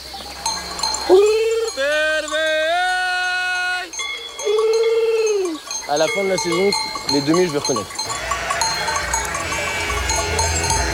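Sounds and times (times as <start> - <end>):
faint bell-like ring: 0.4 - 10.9
speech: 1.1 - 1.3, 5.9 - 8.0
shepherd imitating lamb gurgling bleat to call ewes: 8.1 - 10.9.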